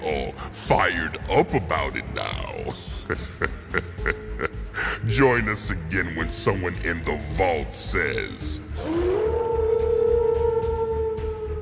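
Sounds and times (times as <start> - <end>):
speech: 0.1 - 8.9
laughter: 2.4 - 5.8
wolf howling with a mournful tone: 8.8 - 11.6.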